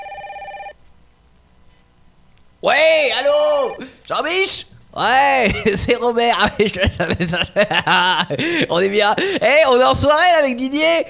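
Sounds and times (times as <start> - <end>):
telephone ringing with a warbling electronic trill: 0.0 - 0.8, 3.5 - 3.8
speech: 2.6 - 11.0
laughter: 5.4 - 9.4.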